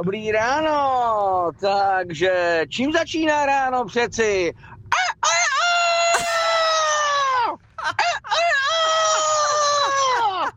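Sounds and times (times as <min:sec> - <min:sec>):
speech: 0:00.0 - 0:04.7
person imitating rooster crowing: 0:05.0 - 0:10.0.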